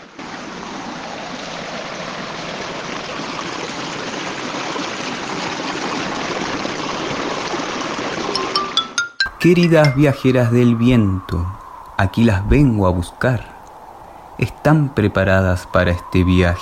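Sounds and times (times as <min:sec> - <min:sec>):
river water flowing: 0:00.0 - 0:12.2
speech: 0:09.4 - 0:13.5, 0:14.4 - 0:16.6.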